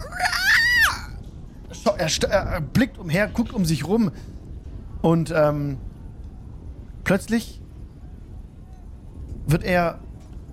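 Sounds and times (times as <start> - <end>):
person imitating a goblin's shrill scream: 0.0 - 1.2
speech: 1.8 - 4.4, 5.0 - 5.9, 7.1 - 7.6, 9.5 - 10.0.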